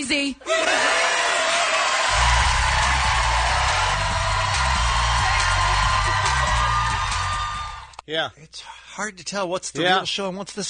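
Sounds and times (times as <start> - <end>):
speech: 0.0 - 0.9, 8.1 - 10.6
crowd applauding: 0.5 - 8.0.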